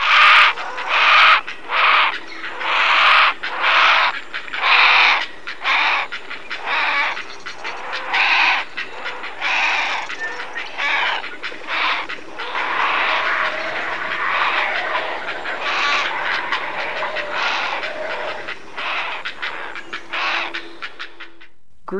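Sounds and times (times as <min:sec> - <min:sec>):
great blue heron harsh grating squawks: 0:00.0 - 0:21.5.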